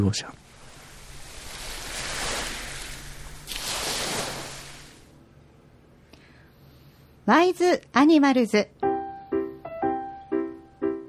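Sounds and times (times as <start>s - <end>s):
speech: 0.0s - 0.4s, 7.3s - 8.8s
ocean surf waves breaking and receding: 0.0s - 5.2s.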